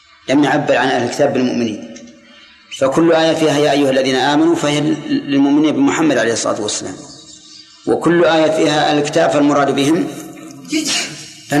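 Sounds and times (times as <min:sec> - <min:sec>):
speech: 0:00.2 - 0:01.9, 0:02.8 - 0:07.2, 0:07.8 - 0:11.5
person sneezing: 0:10.7 - 0:11.3.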